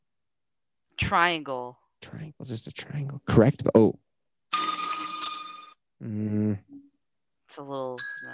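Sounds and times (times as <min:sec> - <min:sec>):
speech: 0:01.0 - 0:04.0, 0:06.0 - 0:06.7, 0:07.5 - 0:08.3
bell ringing with a bright metallic tone: 0:04.5 - 0:05.8, 0:08.0 - 0:08.3.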